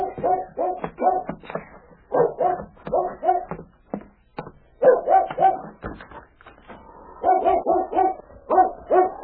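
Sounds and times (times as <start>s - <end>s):
dog barking behind a shed at midnight: 0.0s - 1.4s, 2.1s - 3.6s, 4.8s - 5.8s, 7.2s - 9.2s.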